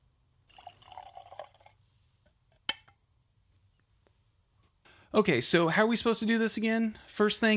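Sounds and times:
whiskey pouring into a glass: 0:00.5 - 0:01.8
speech: 0:05.1 - 0:07.5.

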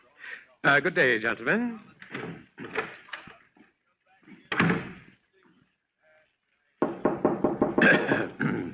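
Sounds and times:
speech: 0:00.6 - 0:02.9
knocking on a door: 0:06.8 - 0:08.3.

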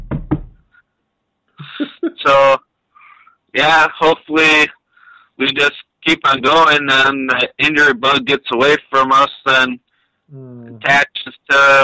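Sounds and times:
knocking on wood: 0:00.0 - 0:00.6
speech: 0:03.6 - 0:04.8, 0:05.4 - 0:11.8
short vocal sound: 0:10.3 - 0:11.1.

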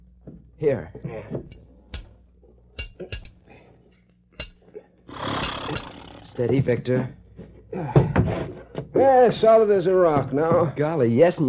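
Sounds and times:
speech: 0:00.6 - 0:01.6, 0:06.3 - 0:07.2, 0:07.8 - 0:11.4
hammer driving nails into a colt's horseshoe at a forge: 0:01.5 - 0:02.2, 0:02.8 - 0:03.4, 0:04.4 - 0:04.6.

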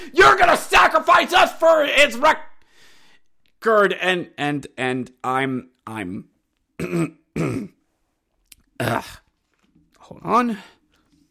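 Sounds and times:
speech: 0:00.0 - 0:02.5, 0:03.6 - 0:07.8, 0:08.8 - 0:09.2, 0:10.1 - 0:10.8
person clearing throat: 0:06.8 - 0:07.8, 0:08.8 - 0:09.3.

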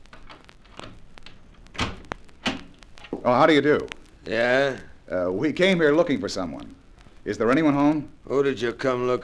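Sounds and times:
door latch clicks: 0:01.7 - 0:02.8
speech: 0:03.2 - 0:09.2.

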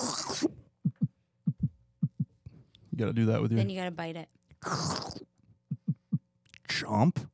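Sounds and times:
voice imitating a heartbeat: 0:00.0 - 0:02.3, 0:05.7 - 0:06.3
speech: 0:03.0 - 0:05.3, 0:06.8 - 0:07.3.

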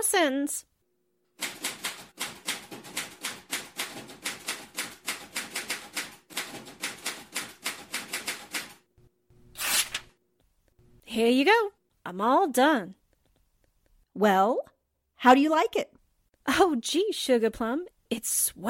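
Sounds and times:
speech: 0:00.0 - 0:00.7, 0:11.2 - 0:13.0, 0:14.2 - 0:18.6
typewriter typing: 0:01.4 - 0:08.8.

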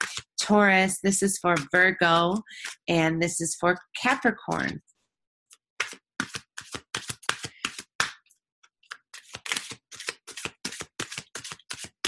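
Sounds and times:
speech: 0:00.5 - 0:04.9
tarot cards being shuffled for a new moon reading: 0:05.8 - 0:08.2, 0:08.8 - 0:12.0.

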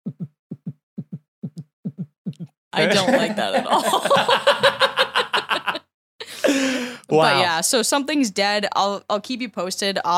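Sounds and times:
rapid deep heartbeat: 0:00.0 - 0:02.5
speech: 0:02.8 - 0:04.9, 0:07.1 - 0:10.1
laughter: 0:02.8 - 0:07.0.

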